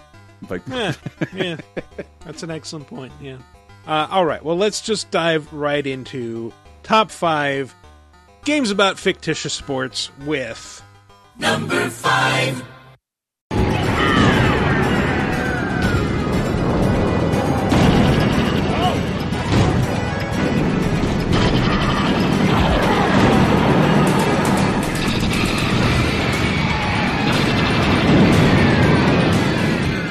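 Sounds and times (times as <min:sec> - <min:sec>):
speech: 0:00.4 - 0:07.8, 0:08.4 - 0:12.8
laughter: 0:00.7 - 0:02.2
vehicle combat video game explosions: 0:13.5 - 0:30.0.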